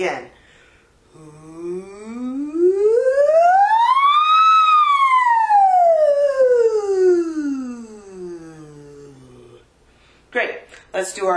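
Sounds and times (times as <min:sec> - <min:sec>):
speech: 0:00.0 - 0:00.4, 0:11.0 - 0:11.3
voice imitating a siren with rising and falling pitch: 0:01.2 - 0:09.6.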